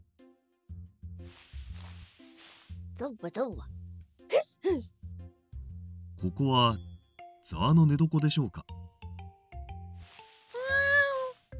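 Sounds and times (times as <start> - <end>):
speech: 3.0 - 3.8, 4.6 - 5.0, 6.2 - 8.8
stray cat meowing: 10.6 - 11.4.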